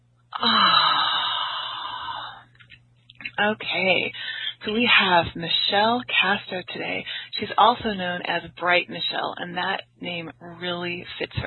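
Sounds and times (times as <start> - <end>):
long deep exhale during a guided breathing exercise: 0.4 - 2.4
speech: 3.4 - 11.4.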